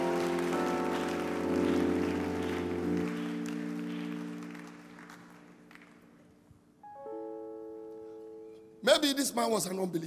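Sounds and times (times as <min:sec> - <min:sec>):
room full of people clapping: 0:00.0 - 0:06.3
sustained organ chords: 0:00.0 - 0:09.9
speech: 0:08.9 - 0:10.0.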